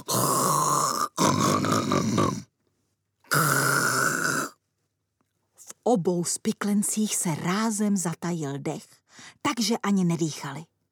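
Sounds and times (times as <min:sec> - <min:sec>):
witch snoring loudly and raspily in sleep: 0:00.0 - 0:02.5, 0:03.3 - 0:04.6
speech: 0:05.9 - 0:10.7.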